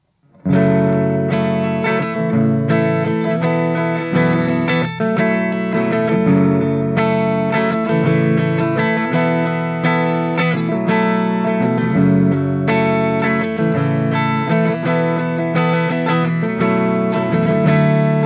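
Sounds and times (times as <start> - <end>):
electric guitar with dirty edge of breakup tone on all three pickups: 0.2 - 18.2.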